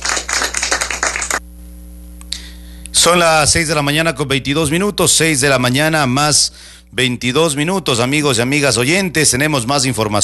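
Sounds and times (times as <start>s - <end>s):
group applauding after an inauguration speech: 0.0s - 1.4s
speech: 3.0s - 10.2s.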